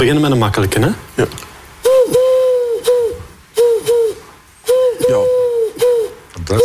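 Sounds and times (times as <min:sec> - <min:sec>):
speech: 0:00.0 - 0:01.5, 0:06.5 - 0:06.6
dove cooing: 0:01.8 - 0:06.6.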